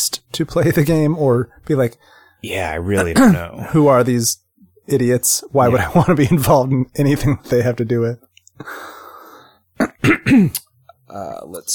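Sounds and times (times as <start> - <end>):
speech: 0.0 - 9.0, 9.8 - 11.7
throat clearing into microphone: 3.0 - 3.6, 9.8 - 10.7.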